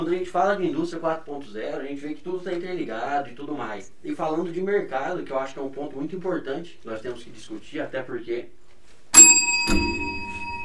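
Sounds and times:
speech: 0:00.0 - 0:08.6, 0:09.2 - 0:10.2
bell rung as a penalty signal: 0:09.2 - 0:10.6.

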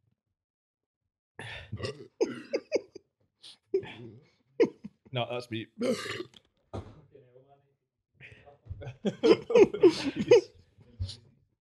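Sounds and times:
person belching after drinking fizzy soda: 0:01.4 - 0:02.8, 0:05.8 - 0:06.3
speech: 0:01.6 - 0:02.5, 0:05.2 - 0:06.4, 0:08.8 - 0:11.2
laughter: 0:02.2 - 0:03.0, 0:08.8 - 0:10.5.

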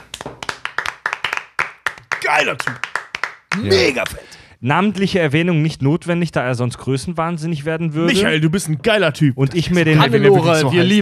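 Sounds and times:
brisk hand clapping from one or two people: 0:00.0 - 0:04.3
speech: 0:02.3 - 0:02.9, 0:03.6 - 0:11.0.

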